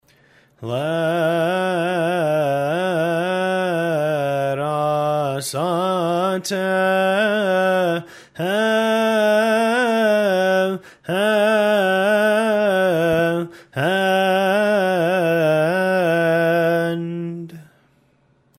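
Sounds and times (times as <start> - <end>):
gregorian chant: 0.6 - 17.7.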